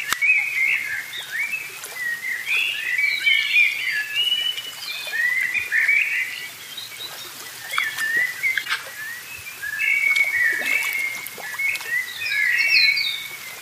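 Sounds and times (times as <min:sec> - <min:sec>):
birds chirping in a park: 0:00.0 - 0:13.6.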